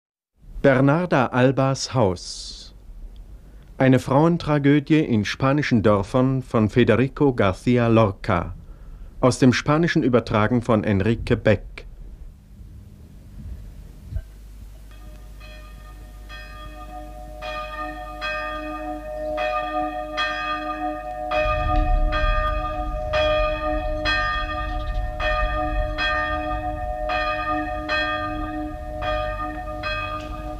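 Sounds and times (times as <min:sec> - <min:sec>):
speech: 0:00.6 - 0:02.6, 0:03.8 - 0:08.6, 0:09.2 - 0:11.8
church bells ringing during a village funeral: 0:14.9 - 0:30.5.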